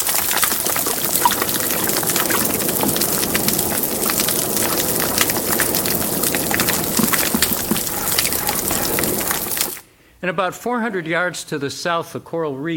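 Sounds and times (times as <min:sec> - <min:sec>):
underwater reef crackling and popping: 0:00.0 - 0:09.8
speech: 0:10.3 - 0:12.7.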